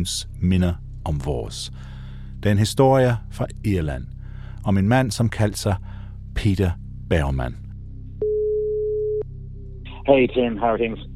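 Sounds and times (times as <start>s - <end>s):
speech: 0.0s - 7.6s, 10.1s - 11.1s
telephone ringback tone on an outgoing call: 8.2s - 9.2s.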